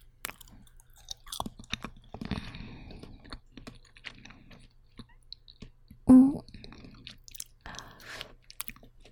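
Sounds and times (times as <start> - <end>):
chewing on a fatty grilled lamb skewer: 0.2 - 9.0.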